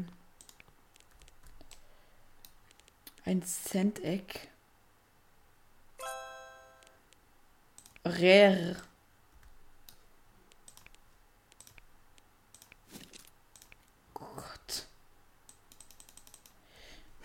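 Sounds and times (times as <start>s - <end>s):
rapid computer mouse clicking: 0.4s - 3.2s, 6.8s - 8.1s, 9.4s - 14.0s, 15.4s - 16.6s
speech: 3.3s - 4.5s, 8.1s - 8.9s.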